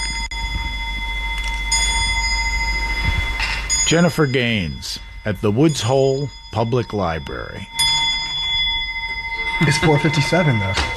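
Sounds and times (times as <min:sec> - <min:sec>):
200-year-old clock chiming: 0:00.0 - 0:10.9
speech: 0:03.9 - 0:07.8, 0:09.6 - 0:10.9.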